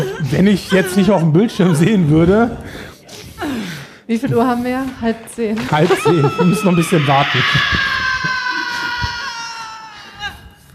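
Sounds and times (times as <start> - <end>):
laughter: 0.0 - 2.5, 5.6 - 9.8
speech: 0.2 - 2.9, 4.1 - 7.9
person screaming in a played film clip: 5.9 - 10.4.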